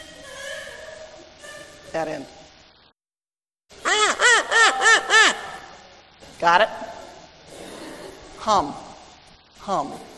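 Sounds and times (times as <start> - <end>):
speech: 1.9 - 2.4, 6.4 - 6.8, 8.4 - 8.8, 9.6 - 10.1
human voice imitating a bird's caw-like squawk: 3.8 - 5.8.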